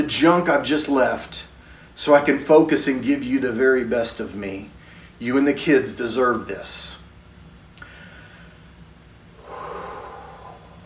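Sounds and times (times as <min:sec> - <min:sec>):
speech: 0:00.0 - 0:07.0
low steady hiss: 0:00.0 - 0:10.8
deep breath: 0:07.8 - 0:08.7, 0:09.4 - 0:10.8.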